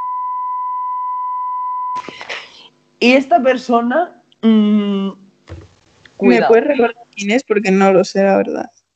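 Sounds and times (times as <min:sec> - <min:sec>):
censor bleep: 0:00.0 - 0:02.0
speech: 0:02.0 - 0:05.2, 0:06.2 - 0:08.8
short burst of voice and noise: 0:06.2 - 0:07.0.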